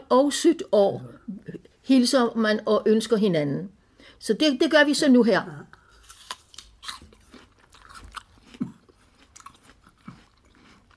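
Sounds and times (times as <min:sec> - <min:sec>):
speech: 0:00.1 - 0:05.8
wet chewing of an apple: 0:05.9 - 0:10.9
biting into an apple: 0:06.0 - 0:10.9.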